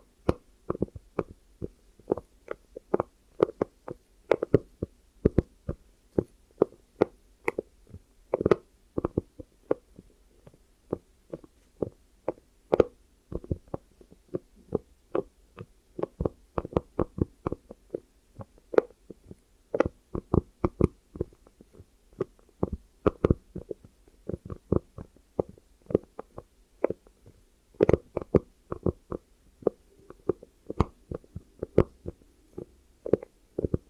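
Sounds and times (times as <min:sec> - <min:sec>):
short taps, clicks and soft thuds as ASMR ear triggers: 0:00.2 - 0:33.8.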